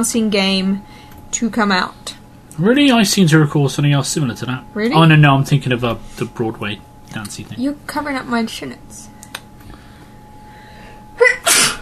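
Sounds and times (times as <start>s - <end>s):
speech: 0.0s - 9.1s
single human sneeze: 11.2s - 11.8s.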